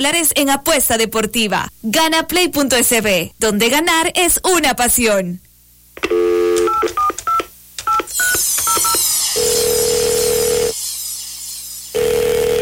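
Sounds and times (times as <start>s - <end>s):
speech: 0.0s - 5.4s
phone keypad beeps dialling a number: 6.1s - 9.0s
steady telephone ringback tone: 8.1s - 12.5s.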